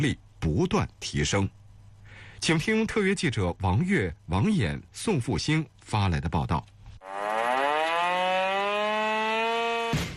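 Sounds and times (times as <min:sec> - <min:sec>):
speech: 0:00.0 - 0:01.6, 0:02.4 - 0:07.2
loud military base alarm siren wailing in barracks: 0:07.0 - 0:10.0.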